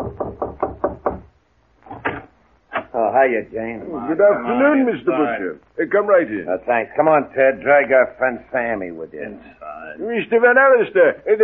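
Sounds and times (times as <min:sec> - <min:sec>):
knocking on a door: 0:00.0 - 0:01.3
speech: 0:03.1 - 0:11.4.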